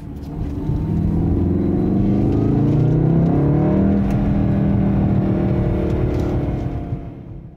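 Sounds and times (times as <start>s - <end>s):
turbo four-cylinder car engine revving with engine noise piped into the cabin by a Soundaktor: 0.0s - 7.5s.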